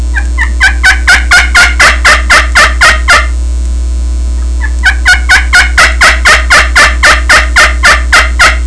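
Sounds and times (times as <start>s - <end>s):
turkey yelps on a slate call: 0.1s - 3.3s, 4.6s - 8.6s.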